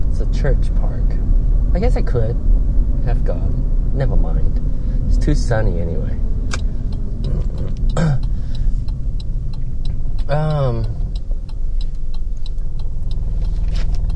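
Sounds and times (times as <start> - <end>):
old car running and vibrating: 0.0 - 14.1
speech: 0.3 - 6.3, 10.3 - 11.0
vocal throat sounds: 7.1 - 8.4, 10.2 - 11.1.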